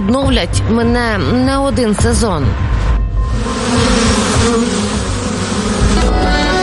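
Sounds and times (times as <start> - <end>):
speech: 0.0 - 2.8
swarm of honeybees buzzing: 3.2 - 6.6.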